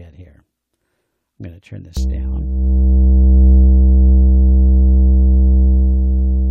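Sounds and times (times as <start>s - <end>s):
speech: 1.4s - 3.4s
synthesizer oscillator drone from an LFO at audio rate: 2.0s - 6.4s.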